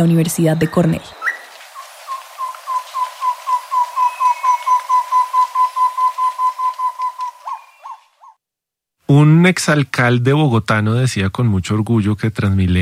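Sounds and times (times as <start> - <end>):
speech: 0.0 - 1.2, 9.1 - 12.7
tobacá común bird trilling: 0.0 - 8.4.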